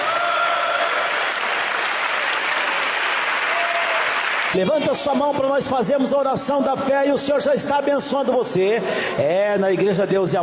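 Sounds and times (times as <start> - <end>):
church congregation clapping: 0.0 - 4.8
speech: 4.6 - 10.4.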